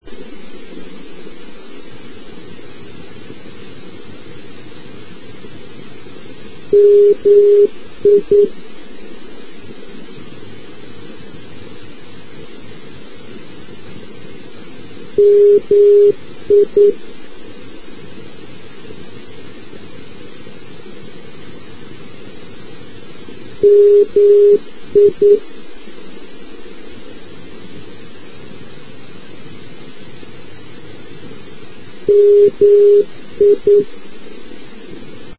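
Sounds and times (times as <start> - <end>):
NDB radio beacon signal in Mikkeli: 6.7 - 8.5, 15.2 - 17.0, 23.6 - 25.4, 32.1 - 33.9.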